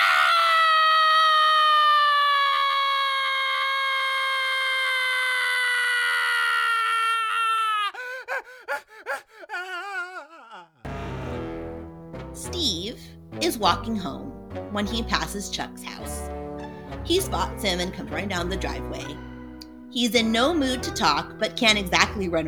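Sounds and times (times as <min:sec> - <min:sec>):
huge high-pitched wailing cry after a kick: 0:00.0 - 0:08.0, 0:08.7 - 0:10.7
speech: 0:13.6 - 0:16.2, 0:17.1 - 0:19.3, 0:19.9 - 0:22.4.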